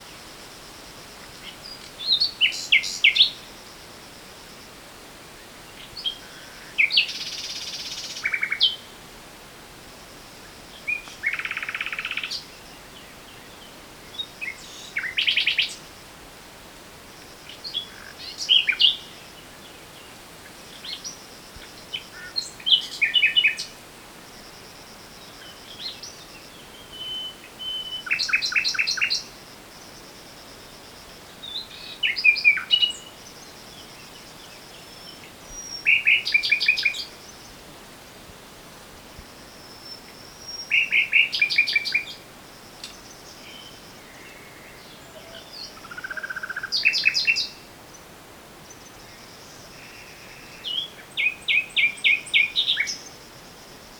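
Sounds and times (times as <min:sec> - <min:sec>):
nightingale singing: 0:01.4 - 0:03.5, 0:05.7 - 0:08.9, 0:10.7 - 0:15.9, 0:17.5 - 0:20.1, 0:21.9 - 0:23.8, 0:25.4 - 0:29.4, 0:31.3 - 0:37.6, 0:39.6 - 0:53.4.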